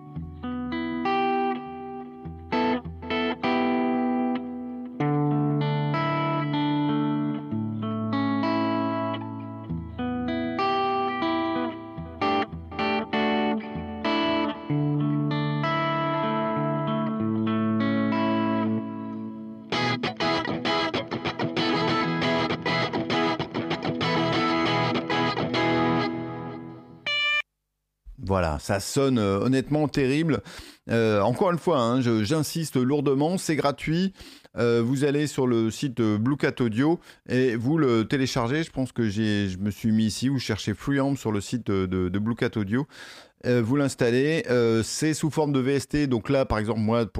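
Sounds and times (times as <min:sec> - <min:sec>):
amp-simulated electric guitar playing chords with reverb and delay: 0:00.0 - 0:27.4
speech: 0:28.6 - 0:47.1.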